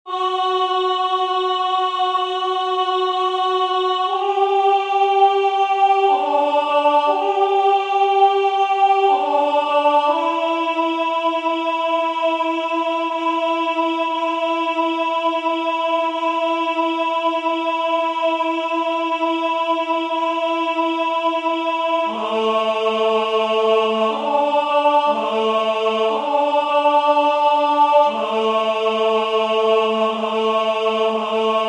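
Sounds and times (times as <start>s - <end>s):
alto voices of two choirs singing a verse: 0.1s - 31.6s.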